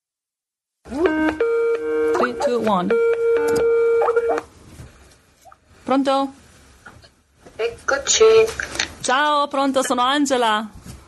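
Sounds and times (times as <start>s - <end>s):
video call connecting tone from a played recording: 1.0s - 4.5s
speech: 2.5s - 3.8s, 5.9s - 6.4s, 7.6s - 10.8s.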